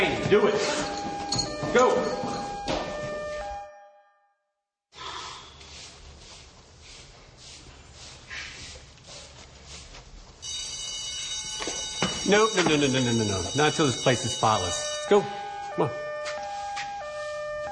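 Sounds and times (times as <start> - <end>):
speech: 0.0 - 0.9, 1.7 - 2.3, 12.3 - 16.4
alarm ringing with piercing tones: 0.0 - 4.4, 10.4 - 17.7.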